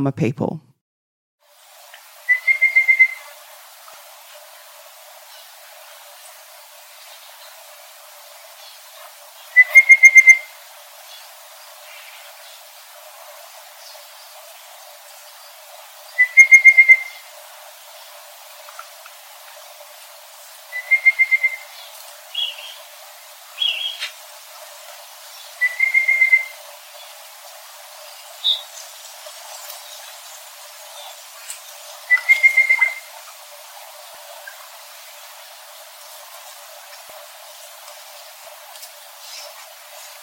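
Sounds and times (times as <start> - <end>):
speech: 0.0 - 0.7
faint steady outdoor background: 0.0 - 0.8, 1.4 - 40.2
pardalotes calling in creekside trees: 2.3 - 3.3, 9.6 - 10.5, 16.2 - 17.3, 20.7 - 21.7, 25.6 - 26.6, 32.1 - 33.1.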